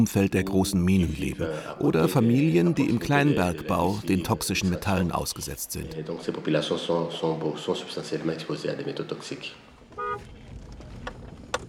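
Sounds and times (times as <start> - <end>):
speech: 0.0 - 9.7
rattly car engine rumbling on a rough road: 9.6 - 11.6
car clunks over potholes: 9.9 - 11.6
short car horn toot: 10.0 - 10.3.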